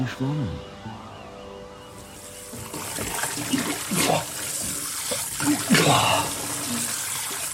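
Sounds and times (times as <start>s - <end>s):
shower stream of water running over a man: 2.0s - 7.5s
man's indistinct vocal sounds: 5.4s - 6.9s.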